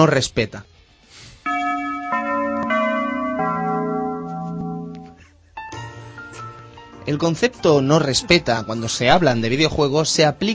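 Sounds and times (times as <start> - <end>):
speech: 0.0 - 0.7, 7.1 - 10.5
church-style bell sound effect tolling: 1.5 - 5.2.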